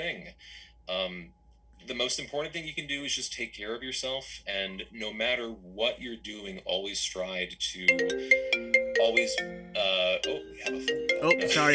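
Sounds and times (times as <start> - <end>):
speech: 0.1 - 11.7
phone ringtone from a phone connected to a computer: 7.9 - 11.7.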